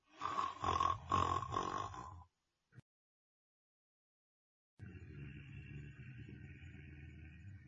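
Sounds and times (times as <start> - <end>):
loud rasping snoring: 0.1 - 2.3
steady low droning noise: 4.8 - 7.6.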